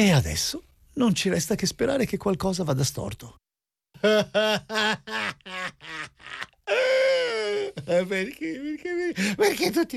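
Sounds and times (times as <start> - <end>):
speech: 0.0 - 3.4, 4.0 - 9.9
person sobbing and wailing: 4.0 - 9.7.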